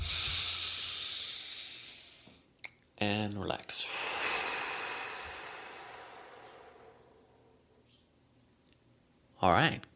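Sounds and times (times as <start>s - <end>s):
deep breath in: 0.0s - 2.4s, 3.8s - 7.8s
speech: 3.0s - 4.1s, 9.4s - 9.9s.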